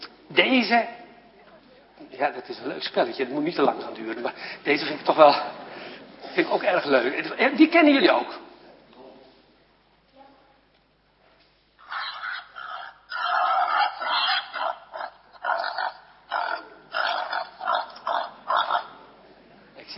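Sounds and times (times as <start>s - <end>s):
speech: 0.3s - 1.0s, 2.2s - 5.6s, 6.4s - 8.5s
frog croaking: 11.8s - 19.0s.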